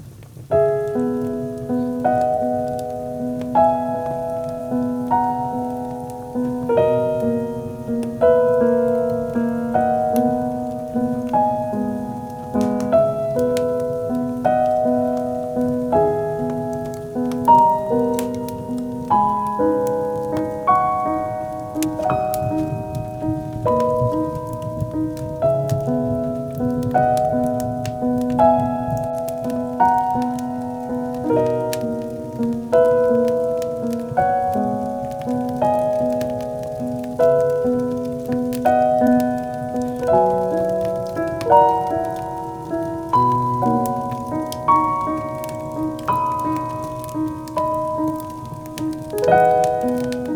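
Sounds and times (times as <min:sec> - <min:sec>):
bonfire burning: 0:00.0 - 0:50.3
rain: 0:00.0 - 0:50.3.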